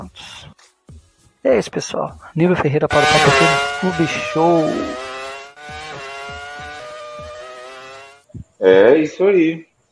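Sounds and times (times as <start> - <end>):
speech: 1.4 - 5.1, 8.6 - 9.7
high-pitched Formula 1 engine screaming through gear shifts: 2.9 - 8.3.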